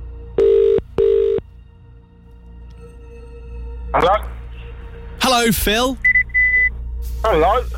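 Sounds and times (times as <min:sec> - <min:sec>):
outgoing phone call ringback tones: 0:00.4 - 0:01.4
speech: 0:03.9 - 0:04.3, 0:05.3 - 0:06.1, 0:07.2 - 0:07.7.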